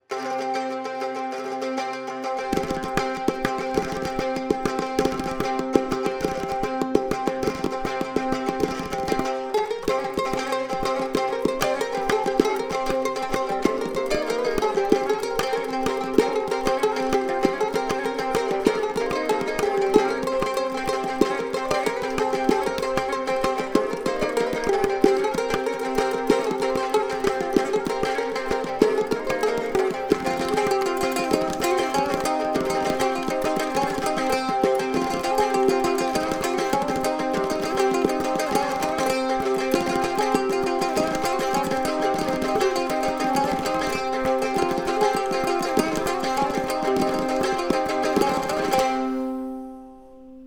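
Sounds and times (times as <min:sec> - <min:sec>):
pandura lute playing: 0:00.0 - 0:50.4.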